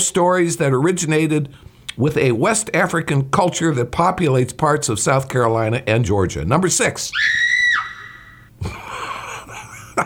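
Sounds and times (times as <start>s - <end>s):
speech: 0.0s - 7.6s, 8.6s - 8.8s
loud high-pitched scream: 7.1s - 8.5s.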